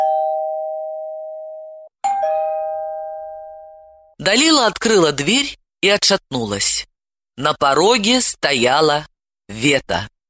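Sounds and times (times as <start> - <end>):
doorbell ringing with two long chime tones: 0.0 - 4.2
speech: 4.2 - 10.2.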